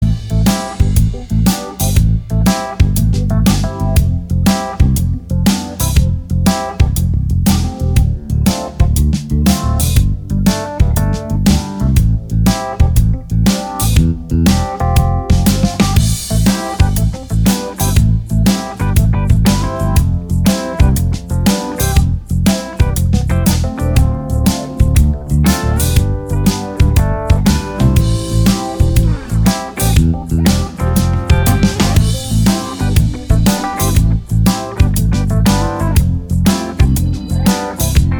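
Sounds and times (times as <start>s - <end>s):
uptown music loop: 0.0s - 38.1s.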